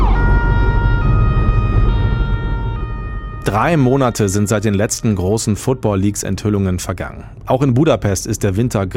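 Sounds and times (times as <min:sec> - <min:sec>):
ambulance siren with a two-tone wail: 0:00.0 - 0:06.0
heavy rumbling traffic: 0:00.0 - 0:08.9
speech: 0:03.4 - 0:08.9.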